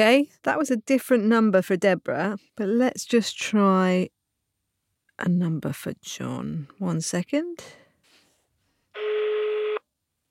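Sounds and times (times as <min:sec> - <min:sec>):
speech: 0:00.0 - 0:04.2, 0:05.2 - 0:07.8
foreign phone call ringback tone: 0:09.0 - 0:09.8.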